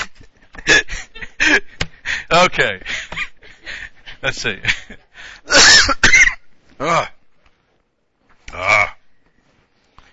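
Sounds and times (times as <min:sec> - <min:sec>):
speech: 0:02.3 - 0:02.9, 0:04.2 - 0:06.0, 0:06.8 - 0:07.1
person coughing with raspy throat-clearing hacks: 0:05.5 - 0:07.2.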